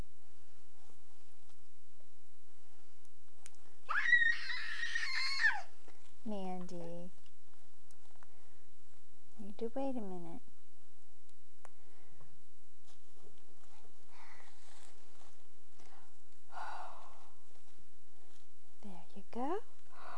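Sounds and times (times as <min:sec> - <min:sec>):
faint rustling: 0:00.0 - 0:20.1
breathy sounds: 0:08.2 - 0:08.8, 0:11.7 - 0:12.4, 0:13.6 - 0:15.0, 0:15.8 - 0:17.6, 0:19.8 - 0:20.1
speech: 0:09.6 - 0:10.6.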